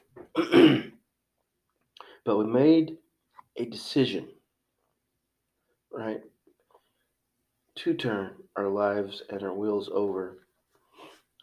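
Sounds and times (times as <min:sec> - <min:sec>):
person coughing: 0:00.3 - 0:01.0
speech: 0:00.4 - 0:00.9, 0:02.3 - 0:03.0, 0:03.6 - 0:04.4, 0:06.0 - 0:06.3, 0:07.8 - 0:10.4.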